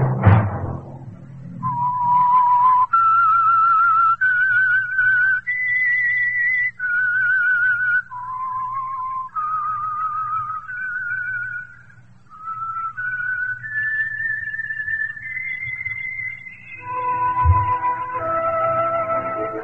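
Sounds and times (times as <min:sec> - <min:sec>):
lone whistler whistling a slow rising melody: 0:01.6 - 0:19.6
orchestra playing: 0:16.8 - 0:19.6.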